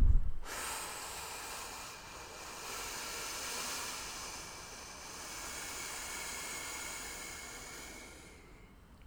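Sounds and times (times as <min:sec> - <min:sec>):
brief low thump: 0:00.0 - 0:00.5
slow deep breath drawn in to fill the lungs: 0:00.4 - 0:08.8.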